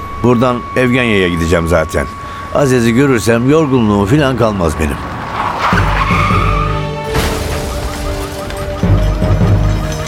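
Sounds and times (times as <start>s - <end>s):
car engine noise: 0.0s - 10.0s
speech: 0.2s - 5.1s
car tires screeching and skidding: 3.3s - 10.0s
police car crashing into car: 5.2s - 10.0s.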